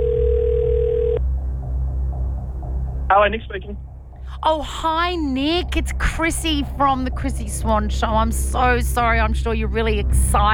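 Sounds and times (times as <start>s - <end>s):
steady telephone dial tone as a call is dialed: 0.0s - 1.2s
low hum: 0.0s - 10.5s
speech: 3.1s - 10.5s.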